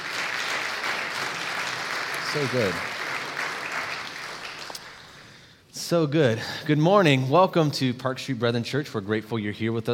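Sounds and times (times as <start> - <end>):
audience applauding: 0.0 - 5.4
speech: 2.3 - 3.0, 5.9 - 9.9.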